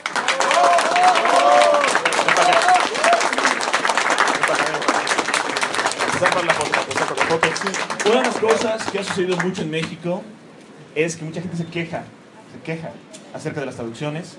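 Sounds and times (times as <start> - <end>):
audience applauding at a comic book presentation event: 0.0 - 10.0
speech: 6.4 - 10.4, 11.0 - 14.3.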